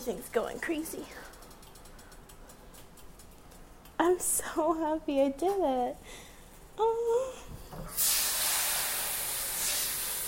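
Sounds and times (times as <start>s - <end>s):
speech: 0.0s - 1.3s, 4.0s - 8.1s
hot pan hissing and steaming: 7.9s - 10.2s.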